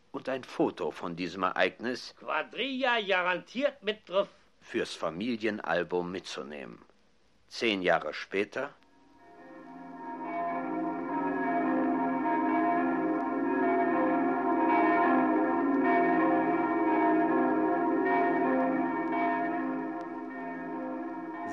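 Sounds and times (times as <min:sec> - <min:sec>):
speech: 0:00.2 - 0:06.9, 0:07.5 - 0:08.8
cathedral church bells ringing in a dense peal: 0:09.2 - 0:21.5.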